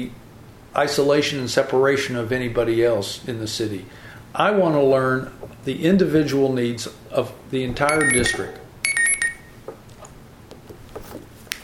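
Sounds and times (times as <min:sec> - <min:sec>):
speech: 0:00.0 - 0:08.6
high electronic chirp from a mobile phone ringtone: 0:07.9 - 0:09.6.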